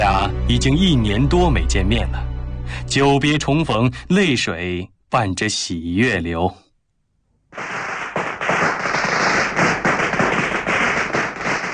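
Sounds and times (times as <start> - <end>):
speech: 0.0 - 6.6
firecrackers popping for Spring Festival: 7.5 - 11.7.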